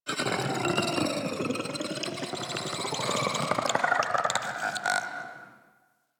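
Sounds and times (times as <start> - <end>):
processed vocals: 0.1 - 5.6.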